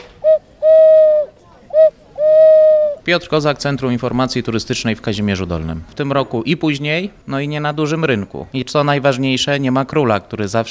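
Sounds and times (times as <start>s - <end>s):
owl-shaped toy whistle hooting: 0.2s - 3.0s
speech: 3.1s - 10.6s.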